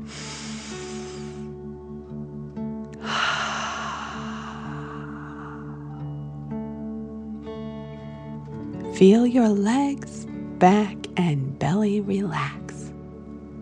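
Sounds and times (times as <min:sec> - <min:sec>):
deep breath drawn in through the nose: 0:00.0 - 0:01.5, 0:03.0 - 0:06.1
forceful airy exhale: 0:00.0 - 0:01.5, 0:03.0 - 0:06.1
soft sustained musical drone: 0:00.0 - 0:13.6
speech: 0:09.0 - 0:12.6.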